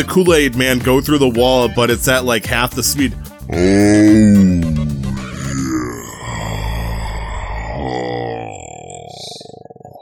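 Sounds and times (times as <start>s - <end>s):
speech: 0.0s - 4.8s
loud drawn-out human yawn with a strained groaning voice: 3.5s - 10.0s.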